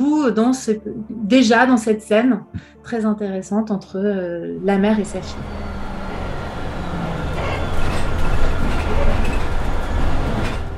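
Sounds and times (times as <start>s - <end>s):
speech: 0.2s - 5.7s
low rumble and road drone inside a moving bus: 4.6s - 10.7s.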